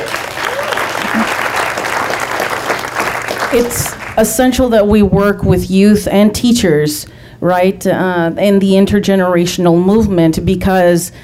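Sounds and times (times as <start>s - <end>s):
crowd applauding in a room: 0.0s - 4.2s
speech: 3.5s - 11.2s.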